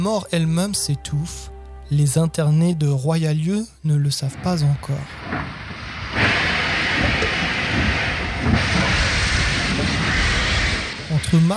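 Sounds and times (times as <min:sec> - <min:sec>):
speech: 0:00.0 - 0:06.4, 0:11.3 - 0:11.5
steam train hissing steam: 0:04.3 - 0:11.5.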